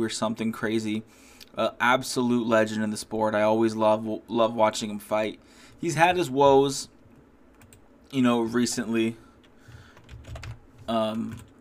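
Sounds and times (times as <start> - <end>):
speech: 0.0 - 6.9, 8.1 - 9.2, 10.9 - 11.5
typing on a computer keyboard: 9.7 - 11.5.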